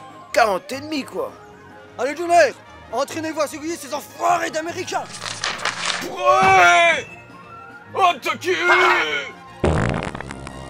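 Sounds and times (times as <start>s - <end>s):
speech: 0.4s - 1.4s, 2.0s - 5.4s, 6.0s - 7.2s, 7.9s - 9.8s
fart: 9.6s - 10.6s.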